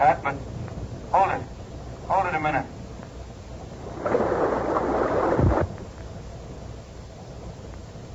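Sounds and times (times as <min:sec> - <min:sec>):
speech: 0:00.0 - 0:01.6, 0:02.2 - 0:02.7
sudden surge of loud rushing water: 0:03.8 - 0:05.7.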